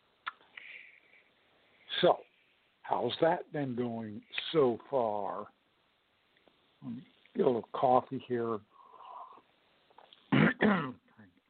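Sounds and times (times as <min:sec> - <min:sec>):
faint noise: 0:00.0 - 0:11.4
speech: 0:02.0 - 0:02.3, 0:02.9 - 0:05.6, 0:06.8 - 0:08.7
man clearing throat: 0:10.3 - 0:11.1.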